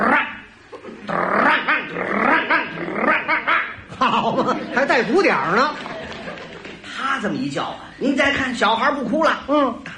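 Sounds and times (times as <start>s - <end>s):
man imitating a dog growling, barking and snarling: 0.0s - 3.9s
laughter: 0.7s - 7.0s
speech: 4.2s - 5.9s, 7.2s - 9.9s.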